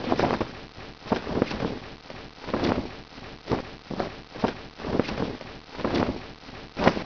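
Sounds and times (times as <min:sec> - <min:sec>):
flag flapping: 0:00.0 - 0:07.0.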